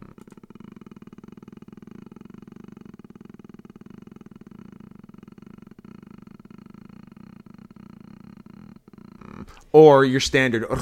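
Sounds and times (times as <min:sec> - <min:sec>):
person imitating cat purr with throat rumble: 0:00.0 - 0:09.7, 0:10.6 - 0:10.7
speech: 0:09.5 - 0:10.7.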